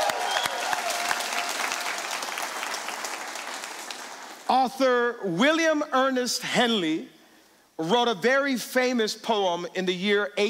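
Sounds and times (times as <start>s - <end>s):
church congregation applauding: 0.0s - 4.5s
speech: 4.5s - 7.2s, 7.8s - 10.4s.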